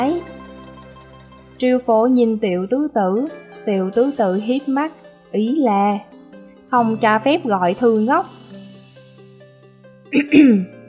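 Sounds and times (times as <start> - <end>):
speech: 1.6 - 6.1, 6.7 - 8.4, 10.1 - 10.8
man dry coughing: 10.2 - 10.7.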